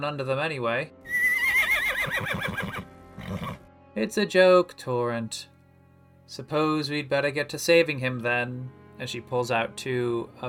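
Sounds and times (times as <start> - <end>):
speech: 0.0 - 1.2, 2.0 - 3.4, 4.0 - 5.5, 6.3 - 10.4
horse whinnying: 1.0 - 3.7.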